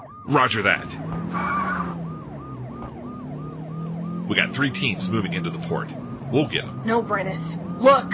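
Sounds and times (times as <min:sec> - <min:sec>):
police siren wailing during a car chase: 0:00.0 - 0:08.1
speech: 0:00.3 - 0:01.9, 0:04.3 - 0:08.1.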